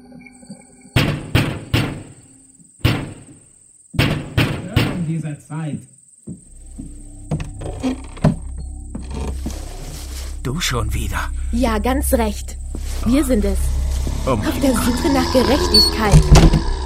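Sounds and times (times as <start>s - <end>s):
loud sharp knocks on a door: 1.0s - 2.2s, 2.8s - 3.4s, 4.0s - 5.1s
speech: 5.1s - 6.0s, 7.8s - 8.1s, 10.5s - 16.7s
faint steady high whine: 6.4s - 16.2s
low rumbling growl-like noise: 6.4s - 16.8s.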